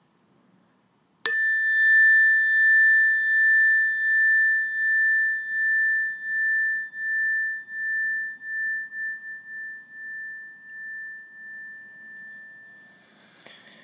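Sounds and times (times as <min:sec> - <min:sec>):
meditation bell ringing: 0:01.3 - 0:13.0.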